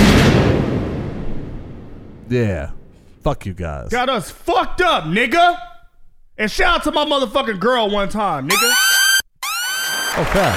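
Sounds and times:
loud blast: 0:00.0 - 0:03.2
rumbling crackling decay: 0:00.0 - 0:04.0
speech: 0:02.3 - 0:05.7, 0:06.4 - 0:09.0, 0:10.2 - 0:10.5.

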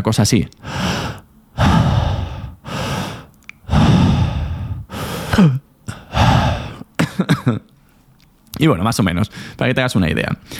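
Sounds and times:
speech: 0:00.0 - 0:01.7, 0:05.4 - 0:05.6, 0:08.6 - 0:10.5
heavy open-mouth inhaling and exhaling: 0:00.6 - 0:06.9, 0:09.3 - 0:09.6.

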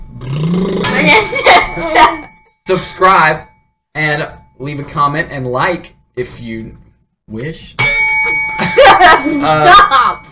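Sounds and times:
hand bell ringing: 0:00.8 - 0:03.7, 0:07.8 - 0:10.3
speech: 0:02.7 - 0:08.0, 0:08.6 - 0:10.3.

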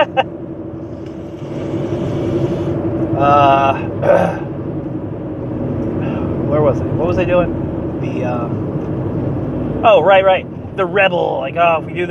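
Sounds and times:
low road rumble inside a moving car: 0:00.0 - 0:12.0
person in the car cabin coughing and wheezing: 0:03.8 - 0:04.5
speech: 0:07.2 - 0:08.6, 0:09.8 - 0:12.0.

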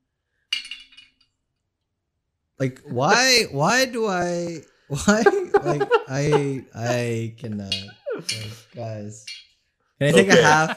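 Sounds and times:
glasses clinking for a toast: 0:00.6 - 0:01.2, 0:05.3 - 0:10.7
laughter: 0:02.6 - 0:08.2, 0:10.1 - 0:10.7
speech: 0:02.6 - 0:10.7.

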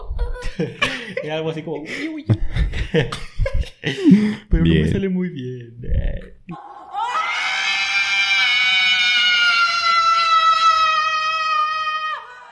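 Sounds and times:
laughter: 0:00.0 - 0:05.0
speech: 0:00.6 - 0:06.6
short low grunt: 0:04.0 - 0:05.0, 0:05.8 - 0:06.4
shrill horror-game jumpscare scream: 0:06.6 - 0:12.5.

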